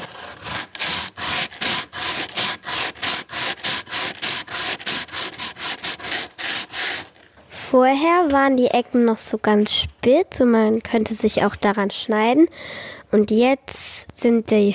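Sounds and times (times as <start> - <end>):
cork sanding block sanding wood: 0.0 - 7.2
speech: 7.7 - 14.7.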